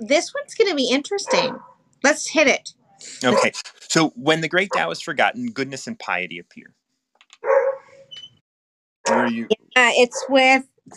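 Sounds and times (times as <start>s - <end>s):
speech: 0.0s - 6.8s, 9.1s - 10.9s
dog barking: 1.3s - 1.7s, 3.2s - 3.7s, 4.6s - 5.1s, 7.4s - 7.9s, 10.1s - 10.3s
laughter: 3.2s - 6.5s, 9.1s - 9.4s.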